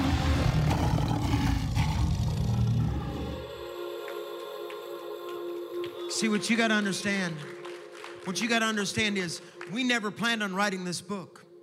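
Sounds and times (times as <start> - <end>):
crowd of people roaring together imitating lions: 0.0 - 3.6
speech: 6.2 - 7.6, 8.2 - 11.4.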